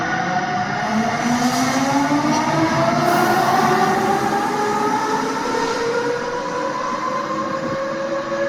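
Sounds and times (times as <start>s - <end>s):
constant roar of rail noise: 0.0s - 8.4s
electric locomotive motors whining: 2.3s - 8.4s.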